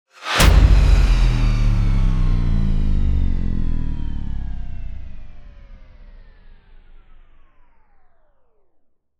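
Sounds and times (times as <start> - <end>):
cutback downer hit: 0.2 - 7.5.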